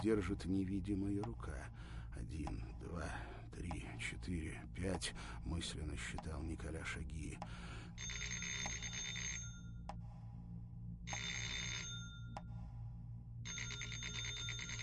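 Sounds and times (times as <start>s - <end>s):
speech: 0.0s - 8.3s
steady low hum: 0.0s - 14.8s
rattling telephone bell ringing in a living room: 8.0s - 9.7s, 11.1s - 12.3s, 13.5s - 14.8s.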